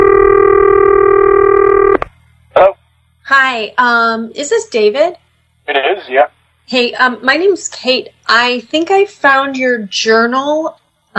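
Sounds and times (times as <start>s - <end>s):
telephone dialing tone: 0.0s - 2.0s
speech: 3.5s - 11.1s.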